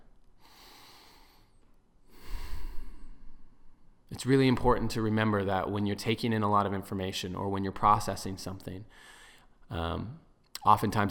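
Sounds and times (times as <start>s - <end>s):
person taking a slow, soft breath: 0.4s - 4.0s, 8.9s - 9.6s
speech: 4.2s - 11.0s.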